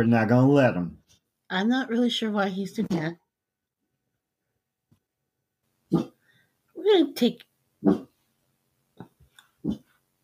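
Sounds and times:
speech: 0.0 - 3.2, 5.9 - 6.1, 6.8 - 8.1, 9.6 - 9.8
dog giving short soft barks: 7.8 - 8.1.

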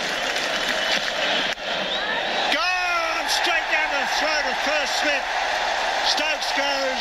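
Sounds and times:
cricket crowd clapping for a bowler: 0.0 - 1.8, 2.5 - 6.9.

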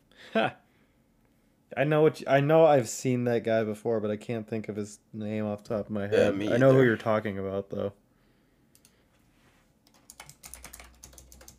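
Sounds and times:
speech: 0.4 - 0.6, 1.8 - 8.0
computer keyboard typing: 9.8 - 11.5.

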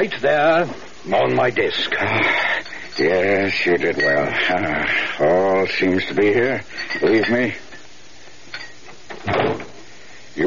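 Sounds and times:
speech: 0.0 - 7.6, 9.2 - 9.7
door shutting with a thud: 9.1 - 9.8.

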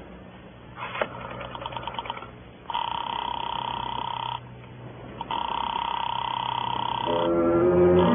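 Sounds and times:
telephone dial-like pulses: 1.0 - 4.5, 5.2 - 8.1
long steady telephone ringing tones on the line: 1.1 - 4.5, 5.2 - 7.4.

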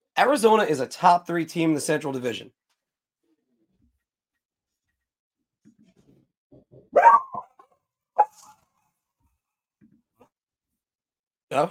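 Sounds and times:
speech: 0.2 - 2.6
dog barking: 6.9 - 7.6, 8.2 - 8.5.

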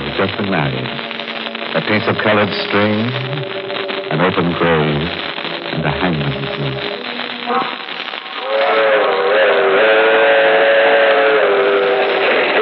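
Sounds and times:
speech: 0.2 - 1.1, 1.8 - 7.8
long train whistle: 7.5 - 12.5.

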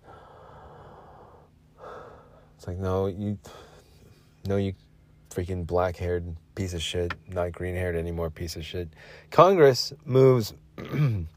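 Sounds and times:
long raspy wheezing breath with whistling edge: 0.0 - 2.6
speech: 2.6 - 3.7, 4.4 - 11.3.

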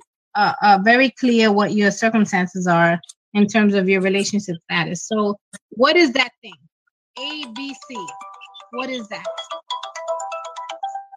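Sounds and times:
speech: 0.4 - 9.7
phone ringtone playing a bright electronic melody: 7.2 - 11.1.

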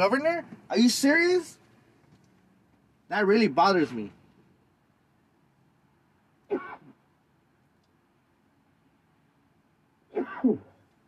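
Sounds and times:
speech: 0.0 - 1.6, 3.1 - 4.2
person sneezing: 6.5 - 7.0, 10.1 - 10.8.

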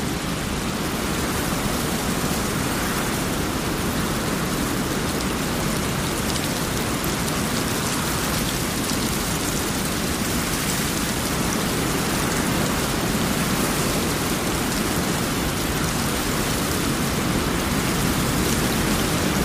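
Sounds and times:
raindrops pattering: 0.0 - 19.4.

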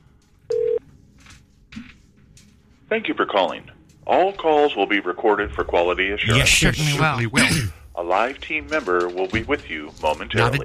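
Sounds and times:
telephone line ringing during a call to a warranty processing company: 0.5 - 0.8
speech: 2.9 - 10.6.

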